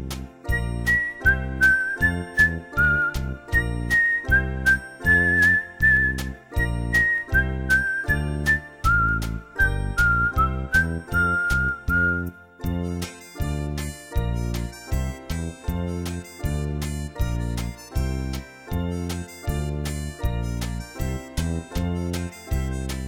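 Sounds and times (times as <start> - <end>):
rhythmic low accompaniment: 0.0 - 23.0
person whistling a tune: 0.5 - 12.6.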